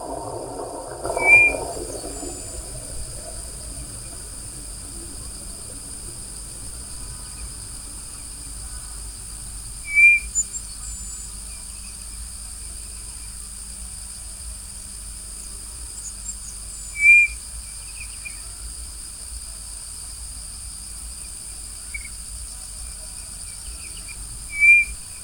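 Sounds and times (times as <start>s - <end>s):
Codorna do Nordeste calling: 0.0s - 9.0s, 9.8s - 11.1s, 17.0s - 17.4s, 23.7s - 25.2s.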